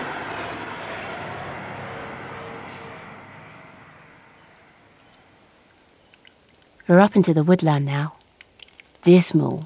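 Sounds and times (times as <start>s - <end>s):
train rumbling on a hidden railway line down below: 0.0s - 5.7s
speech: 6.9s - 8.2s, 9.0s - 9.6s.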